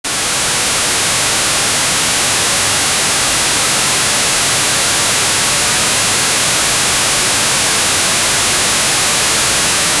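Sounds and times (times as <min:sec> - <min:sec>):
television static: 0:00.1 - 0:09.9.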